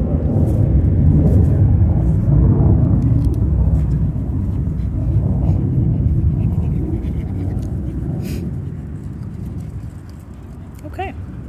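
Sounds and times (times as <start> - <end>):
airplane flying overhead: 0.0 - 11.4.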